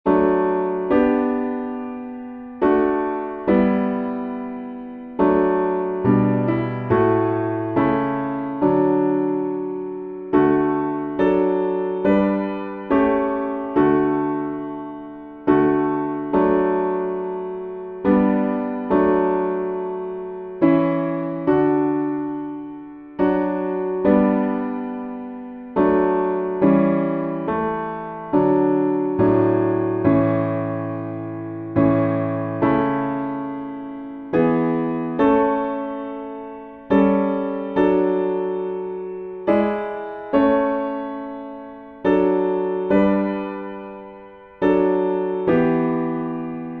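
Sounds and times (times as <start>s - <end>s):
piano backing for hymns: 0.0s - 46.7s.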